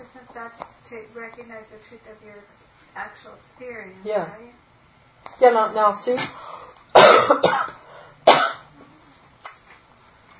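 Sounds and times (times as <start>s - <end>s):
speech: 0.4s - 4.7s, 5.3s - 6.5s
person giving harsh dry coughs: 7.0s - 8.7s.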